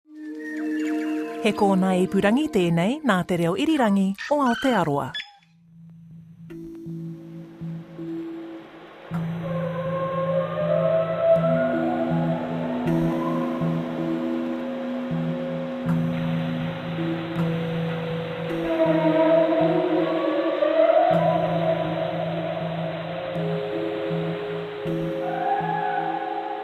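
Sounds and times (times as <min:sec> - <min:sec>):
humpback whale calls with moaning tones and sliding cries: 0:00.1 - 0:01.8, 0:09.2 - 0:15.0, 0:16.1 - 0:26.6
speech: 0:01.4 - 0:05.2.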